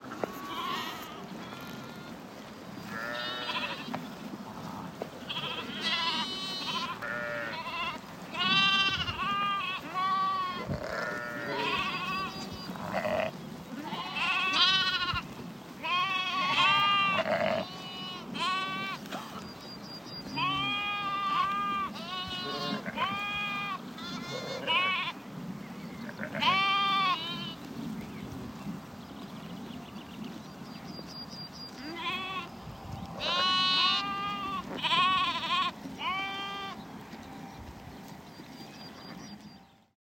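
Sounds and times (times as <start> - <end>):
sheep on the pasture with a travelling shepherd: 0.2 - 2.2, 2.8 - 4.0, 5.2 - 19.3, 20.4 - 25.2, 26.1 - 27.6, 31.8 - 32.6, 33.2 - 36.8.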